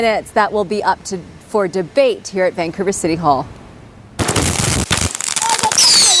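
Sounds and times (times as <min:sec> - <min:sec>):
speech: 0:00.0 - 0:03.6
fireworks exploding in crackling bangs: 0:04.2 - 0:06.1
rockets screeching upward with shrill whistling: 0:04.6 - 0:06.1.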